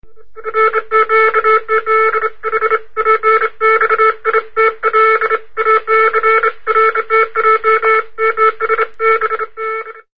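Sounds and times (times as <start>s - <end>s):
distress signal: 0.0s - 10.1s.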